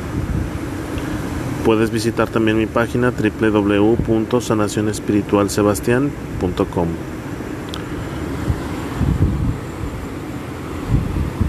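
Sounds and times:
sea waves roaring: 0.0s - 11.4s
speech: 1.6s - 7.2s.

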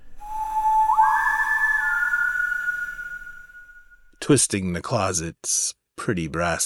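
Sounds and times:
person whistling three notes through wooden closet door slats: 0.1s - 4.1s
speech: 4.3s - 6.6s.

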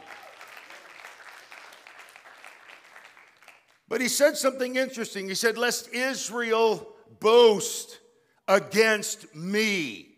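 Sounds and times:
audience applause: 0.0s - 3.8s
speech: 3.9s - 10.1s.

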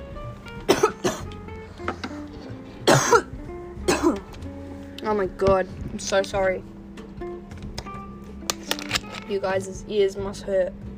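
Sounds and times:
heavy coughing fit with harsh rasping coughs: 0.7s - 1.3s, 2.8s - 4.2s
speech: 5.1s - 6.8s, 9.3s - 10.8s.

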